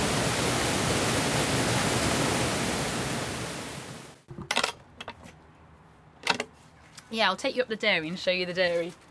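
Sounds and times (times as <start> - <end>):
water flowing through a mill building: 0.0 - 4.2
speech: 7.1 - 9.0.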